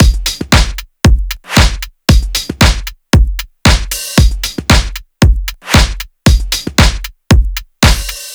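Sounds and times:
funky electronic music: 0.0s - 8.3s.

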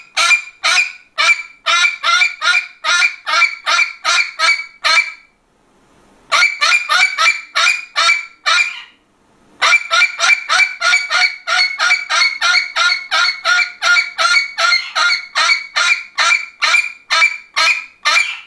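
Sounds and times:
parrot squawking harsh harmonic notes: 0.0s - 5.3s, 6.3s - 9.0s, 9.6s - 18.4s.

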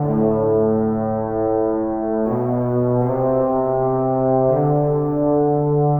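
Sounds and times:
trombones: 0.0s - 5.9s.

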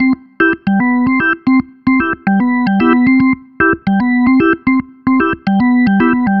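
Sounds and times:
jolly organ music: 0.0s - 6.3s.

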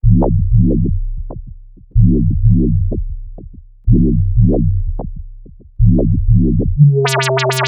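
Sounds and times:
break beat: 0.0s - 7.6s
wobble bass in D: 0.0s - 7.6s.

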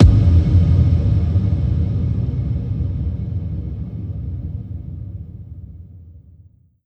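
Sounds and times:
techno trance hit sound effect: 0.0s - 4.7s.

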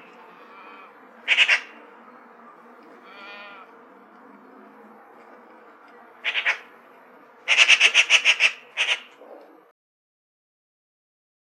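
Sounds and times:
Eurasian magpie giving short harsh chacks: 0.0s - 6.8s, 7.4s - 9.4s
Eurasian magpie rattling chatter: 1.2s - 1.8s, 6.2s - 6.7s, 7.4s - 9.2s.

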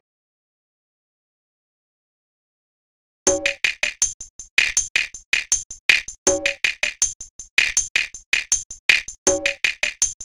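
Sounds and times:
Eastern percussion drums: 3.3s - 10.2s.

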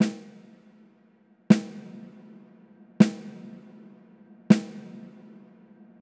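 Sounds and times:
straight snare drum hit: 0.0s - 0.7s, 1.5s - 5.5s.

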